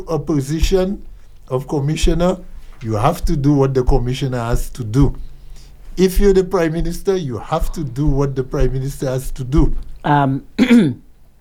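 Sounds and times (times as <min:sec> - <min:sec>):
speech: 0:00.0 - 0:05.3, 0:06.0 - 0:11.0
person clearing throat: 0:10.6 - 0:11.1.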